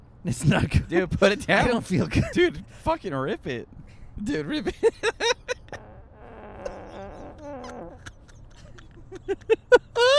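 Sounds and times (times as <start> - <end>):
speech: 0.2 - 5.5, 9.2 - 10.1
drawn-out buzzy fart: 5.8 - 8.0.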